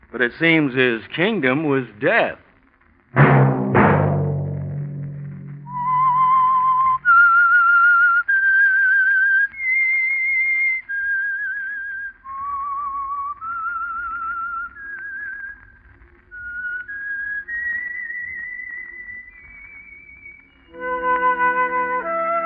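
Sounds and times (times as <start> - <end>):
speech: 0.1 - 2.4
fuller musical chord: 3.2 - 7.1
low thud: 3.2 - 7.4
slow haunting whistled melody: 5.4 - 22.4.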